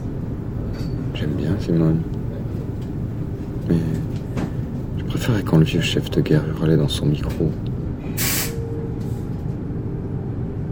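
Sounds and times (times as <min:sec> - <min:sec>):
train arriving at a station in Saint-Chamond: 0:00.0 - 0:10.6
speech: 0:01.2 - 0:02.2, 0:03.7 - 0:04.1, 0:05.2 - 0:07.7
hissing air of an arriving train: 0:08.0 - 0:08.6.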